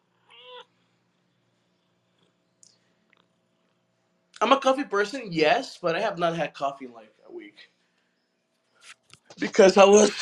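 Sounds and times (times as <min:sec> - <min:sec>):
quiet room hum: 0:00.0 - 0:10.2
cat meowing: 0:00.2 - 0:00.7
speech: 0:04.4 - 0:07.8, 0:08.8 - 0:10.2.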